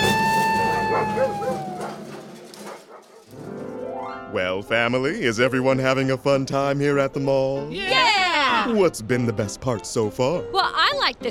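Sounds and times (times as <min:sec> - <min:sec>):
golden retrievers yelping and barking excitedly at a mall: 0:00.1 - 0:03.4
speech: 0:04.3 - 0:11.2.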